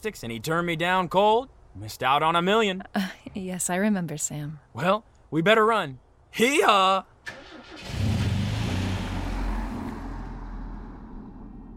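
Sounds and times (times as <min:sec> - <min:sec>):
speech: 0:00.0 - 0:08.0
fancy car engine roaring and revving as it pulls off: 0:07.3 - 0:11.7.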